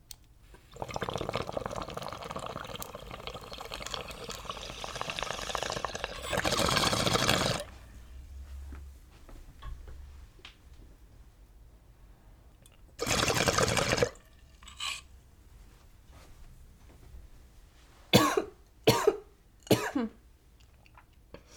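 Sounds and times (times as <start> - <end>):
water bubbling from a bong draw: 0.6 - 7.8, 13.0 - 15.0
sharp coughs: 18.1 - 20.1.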